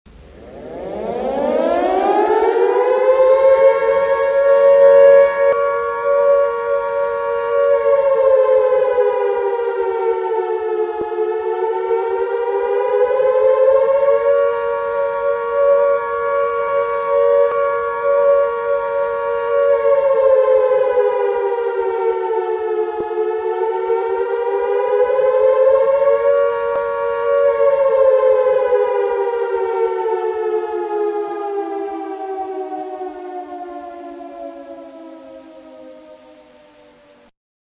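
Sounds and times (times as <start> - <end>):
fire siren in New Zealand: 0.1 - 37.3.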